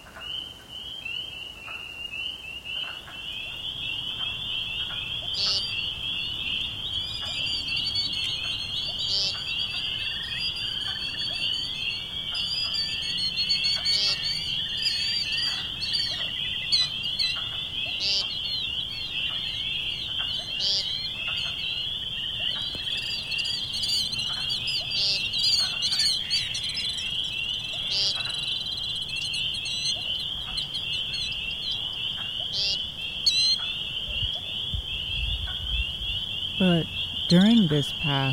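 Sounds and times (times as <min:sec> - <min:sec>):
bird chirps: 0:00.0 - 0:38.3
chorus of spring peepers and wood frogs: 0:00.0 - 0:38.3
speech: 0:36.7 - 0:38.3.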